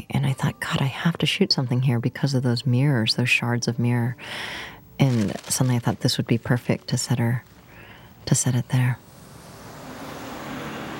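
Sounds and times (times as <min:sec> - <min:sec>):
speech: 0:00.0 - 0:07.5, 0:08.2 - 0:09.1
bus passing: 0:09.0 - 0:10.9.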